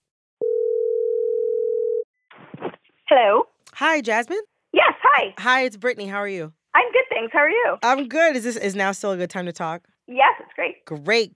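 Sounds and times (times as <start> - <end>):
telephone ringback tone as a call is placed: 0.4 - 2.0
speech: 3.1 - 4.5, 5.1 - 11.3.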